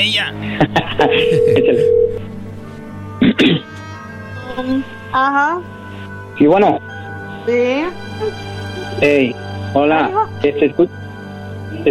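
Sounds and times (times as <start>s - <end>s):
speech: 0.0s - 2.2s, 4.6s - 5.8s, 6.4s - 11.0s
laughter: 0.5s - 2.0s
telephone ringing on an outgoing call: 1.0s - 2.2s.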